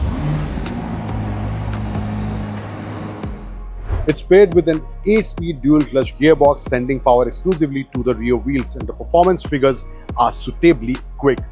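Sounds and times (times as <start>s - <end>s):
powerful twin turbo V8 car engine rumbling: 0.0s - 3.8s
speech: 4.1s - 11.5s.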